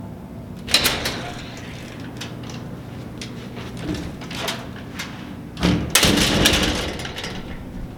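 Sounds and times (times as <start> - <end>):
heavy metal door: 0.6 - 7.9.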